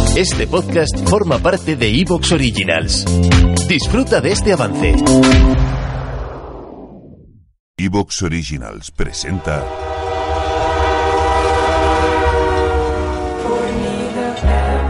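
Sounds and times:
speech: 0.2 - 5.8, 7.8 - 10.0
train horn sounding: 9.4 - 14.8
passing train rumbling with rail clatter: 9.8 - 14.4.

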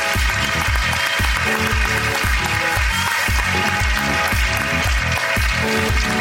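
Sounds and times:
crowd cheering at a live event: 0.0 - 4.9
audience applause at a live event: 0.0 - 6.1.

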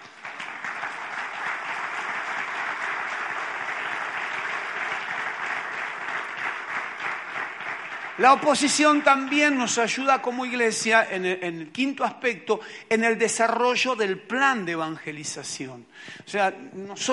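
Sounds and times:
audience applauding: 0.0 - 10.4
speech: 8.2 - 17.1.

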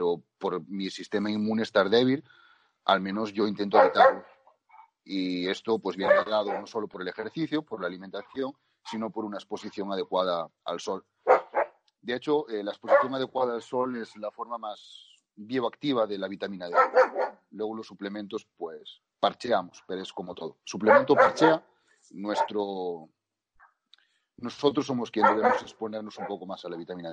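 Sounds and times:
speech: 0.0 - 4.3, 5.0 - 11.4, 12.0 - 23.2, 24.4 - 27.1
dog barking: 3.7 - 4.4, 6.0 - 6.8, 11.2 - 11.8, 12.8 - 13.3, 16.7 - 17.4, 20.8 - 21.6, 22.3 - 22.6, 25.2 - 26.5.

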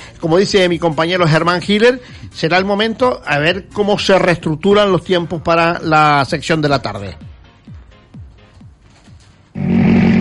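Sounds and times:
speech: 0.2 - 7.3
rally car engine roaring at full throttle: 9.6 - 10.1.

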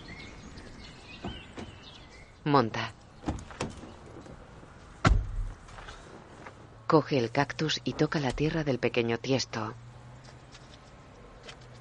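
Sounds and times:
speech: 2.5 - 3.0, 6.9 - 9.9
car driver-side door slamming shut: 3.2 - 4.4, 5.0 - 5.6
car driver-side door unlatching with a soft click: 3.2 - 5.9.

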